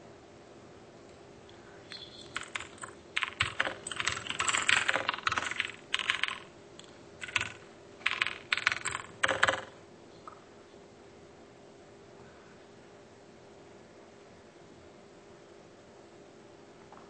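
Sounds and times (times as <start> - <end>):
typing on a computer keyboard: 1.9 - 10.4.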